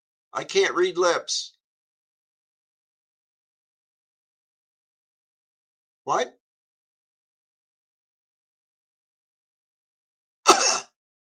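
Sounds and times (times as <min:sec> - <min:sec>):
speech: 0:00.4 - 0:01.6, 0:06.1 - 0:06.4
person coughing: 0:10.5 - 0:11.0.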